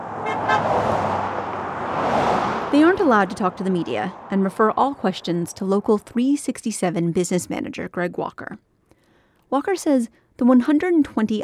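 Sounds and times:
car horn toots: 0.0 - 1.6
cars passing along a road in front of an operations center: 0.0 - 6.4
speech: 2.7 - 8.7, 9.5 - 11.4.

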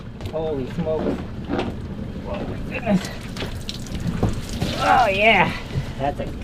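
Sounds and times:
steady rumbling outdoor background: 0.0 - 6.4
speech: 0.3 - 3.6, 4.8 - 6.4
water dripping from an egg-coated branch hoisted into a boat: 2.7 - 6.0.

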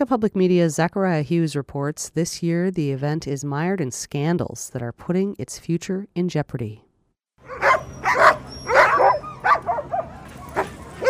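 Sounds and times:
speech: 0.0 - 6.8
sled dogs barking and yipping at the start of a sled dog race in downtown Anchorage: 7.4 - 11.0.

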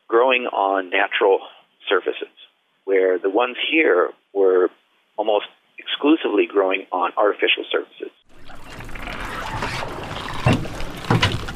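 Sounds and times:
speech: 0.1 - 8.2
small skiff churning and splashing through the water of Whiting Harbor: 8.3 - 11.5.

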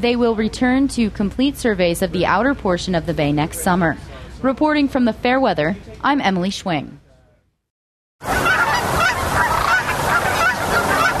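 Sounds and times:
speech: 0.0 - 7.0
large flock of Canada geese honking: 8.2 - 11.1.

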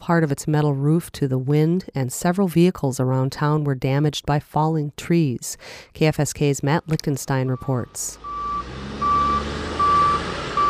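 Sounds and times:
speech: 0.0 - 8.5
low diesel engine rumble of heavy equipment: 7.5 - 10.6
reversing beeps from backhoes clearing a landslide on a highway: 7.6 - 10.6.

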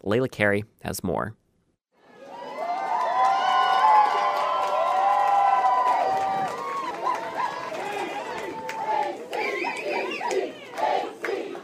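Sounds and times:
speech: 0.0 - 1.4
large crowd cheering and shouting at airport ferry ramp welcoming team: 2.0 - 11.6
excited chatter: 6.4 - 11.6.

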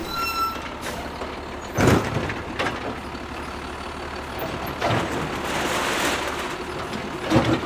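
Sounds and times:
faint reversing beeps: 0.0 - 0.7
heavy recycling truck engine idling: 0.0 - 7.6
sharp clanks and thumps of mechanical arm emptying a recycle bin: 0.1 - 3.0, 4.4 - 7.6.

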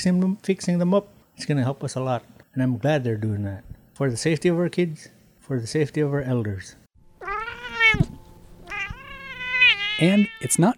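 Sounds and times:
speech: 0.0 - 6.8, 10.0 - 10.7
gray cat meowing: 7.2 - 10.6.

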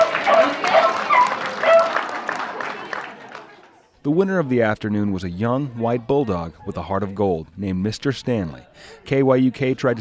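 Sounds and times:
hound dog barking at a dog contest: 0.0 - 2.0
crowd clapping at a dog contest: 0.0 - 3.9
chatter: 0.0 - 9.9
speech: 4.0 - 9.9.

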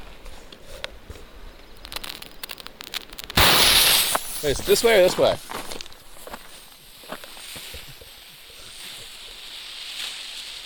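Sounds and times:
banger candle fireworks exploding: 1.8 - 5.2
speech: 4.4 - 5.6.

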